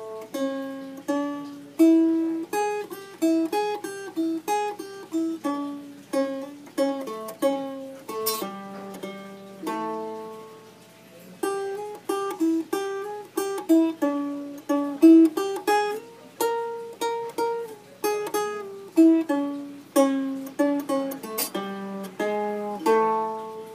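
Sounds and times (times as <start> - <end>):
guitar piece: 0.0 - 23.7.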